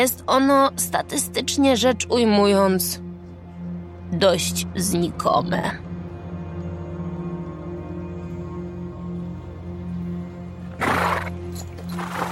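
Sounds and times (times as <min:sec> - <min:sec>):
speech: 0:00.0 - 0:03.0, 0:04.1 - 0:05.9
steady low droning background: 0:00.0 - 0:12.2
horse neighing: 0:10.8 - 0:12.2.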